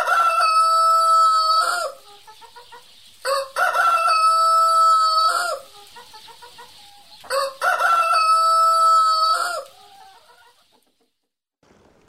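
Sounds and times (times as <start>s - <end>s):
rooster crowing: 0.0s - 2.0s, 3.3s - 5.7s, 7.3s - 10.3s.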